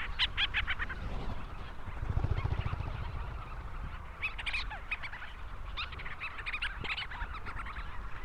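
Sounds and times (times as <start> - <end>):
Leach's storm petrel chattering with staccato harmonic-rich notes: 0.0 - 7.2
steady low background rumble: 0.7 - 5.2.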